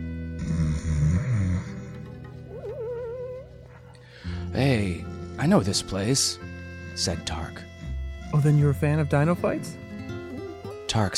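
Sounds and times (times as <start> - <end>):
man lying on his side on a concrete floor snoring loudly: 0.3 - 2.0
speech: 4.5 - 7.7, 8.3 - 9.8, 10.9 - 11.1.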